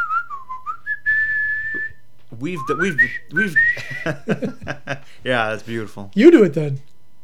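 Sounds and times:
person whistling a short tune: 0:00.0 - 0:04.2
laughter: 0:02.4 - 0:05.9
speech: 0:02.4 - 0:06.9.

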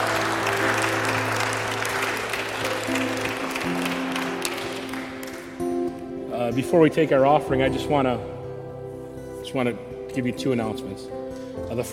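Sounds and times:
large crowd applauding: 0:00.0 - 0:05.9
speech: 0:06.6 - 0:08.4, 0:09.5 - 0:11.9.

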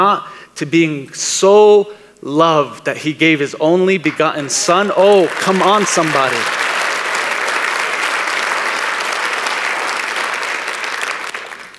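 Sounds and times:
speech: 0:00.0 - 0:06.7
large audience applauding: 0:04.1 - 0:11.7.

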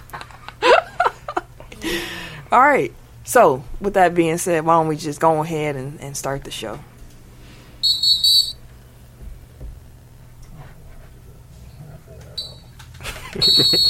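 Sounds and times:
laughter: 0:00.0 - 0:02.0, 0:13.0 - 0:13.8
low hum: 0:00.0 - 0:13.8
speech: 0:02.5 - 0:06.9
cheap plastic whistle blowing in shrill short bursts: 0:07.8 - 0:08.6, 0:13.4 - 0:13.8.

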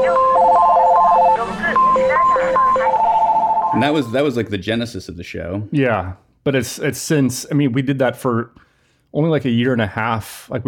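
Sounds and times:
answering machines playing: 0:00.0 - 0:04.3
indistinct voices: 0:00.0 - 0:04.4
racks of telephones ringing in a giant electronics store in Kyoto: 0:00.0 - 0:04.4
speech: 0:03.8 - 0:10.6.

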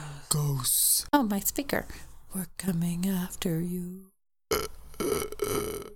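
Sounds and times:
speech: 0:00.3 - 0:05.9
person belching: 0:04.5 - 0:05.9.

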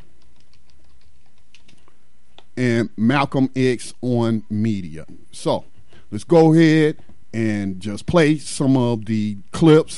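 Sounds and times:
computer keyboard typing: 0:00.0 - 0:02.5
low steady hum: 0:00.0 - 0:09.9
speech: 0:02.6 - 0:09.9.

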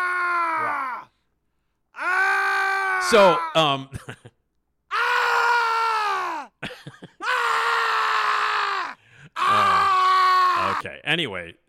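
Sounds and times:
horror sound effect of screaming and groaning: 0:00.0 - 0:01.1, 0:02.0 - 0:03.8, 0:04.9 - 0:06.6, 0:07.2 - 0:10.8
speech: 0:03.0 - 0:04.3, 0:10.8 - 0:11.6
laughter: 0:06.6 - 0:07.2
person gasping: 0:09.0 - 0:09.4.

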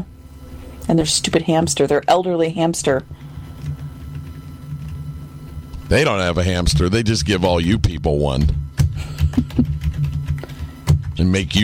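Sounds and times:
low hum: 0:00.0 - 0:11.6
speech: 0:00.9 - 0:03.2, 0:05.9 - 0:08.6, 0:11.2 - 0:11.6
rapid heavy typing on a computer keyboard: 0:08.8 - 0:11.1.

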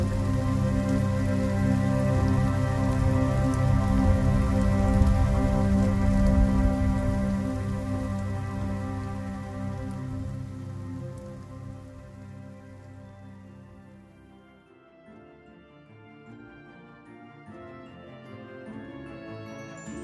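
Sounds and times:
steady rain falling through the night: 0:00.0 - 0:14.3.

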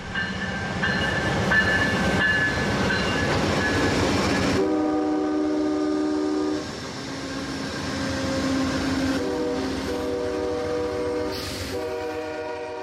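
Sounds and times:
passenger train rumbling and clanking as it moves off: 0:00.0 - 0:12.8
passenger train horn: 0:04.5 - 0:07.5, 0:08.1 - 0:12.8.

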